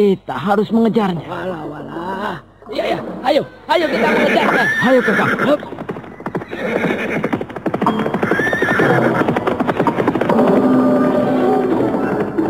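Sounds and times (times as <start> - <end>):
speech: 0.0 - 5.8
horse ridden at great speed galloping: 3.8 - 12.4.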